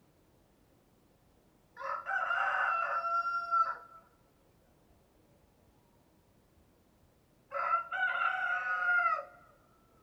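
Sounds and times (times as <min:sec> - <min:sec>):
rooster crowing: 0:01.8 - 0:03.9, 0:07.5 - 0:09.4.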